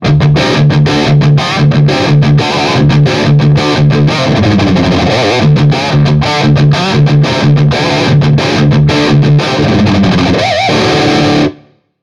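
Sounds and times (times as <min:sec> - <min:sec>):
rock ringtone: 0:00.0 - 0:11.6.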